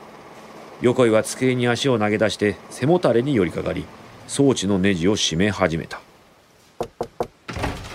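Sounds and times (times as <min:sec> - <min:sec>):
printing press running behind a wall: 0:00.0 - 0:05.5
speech: 0:00.8 - 0:06.0
sharp knocks on an office door: 0:06.8 - 0:07.8
sustained rumble of an office door opening: 0:07.4 - 0:07.9.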